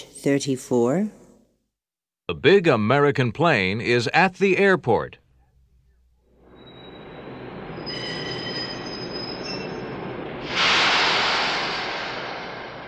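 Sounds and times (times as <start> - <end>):
speech: 0.2 - 1.2, 2.3 - 5.2
high metallic train wheel squeal: 6.4 - 10.6
French train running: 6.4 - 12.8.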